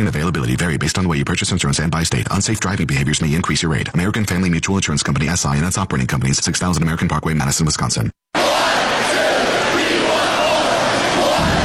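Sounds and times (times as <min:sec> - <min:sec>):
speech: 0:00.0 - 0:08.2
large crowd of hockey fans cheering in an arena: 0:08.4 - 0:11.6.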